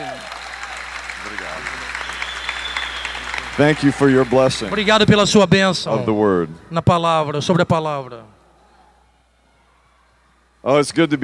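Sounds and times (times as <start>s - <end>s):
congregation applauding: 0.0s - 5.4s
speech: 3.6s - 8.4s, 10.6s - 11.2s.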